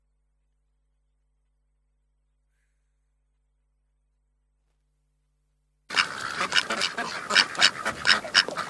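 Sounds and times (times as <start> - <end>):
flock of ducks quacking: 5.9 - 8.6.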